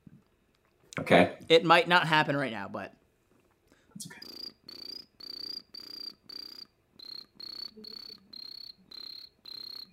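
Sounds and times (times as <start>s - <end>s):
speech: 1.0s - 3.0s, 4.0s - 4.2s
person imitating a chirping cricket: 4.1s - 9.9s.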